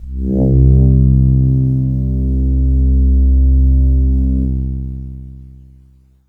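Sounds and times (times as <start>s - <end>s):
Casio VZ 10M synthesizer Astral patch note C2: 0.0s - 5.6s.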